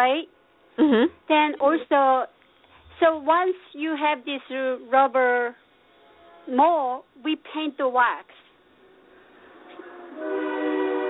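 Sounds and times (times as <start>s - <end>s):
speech: 0.0s - 2.4s, 3.0s - 5.6s, 6.4s - 8.4s
passing train horn multi-tone blast: 5.9s - 6.7s, 9.4s - 11.0s
low rumble of a passing train: 8.9s - 11.0s.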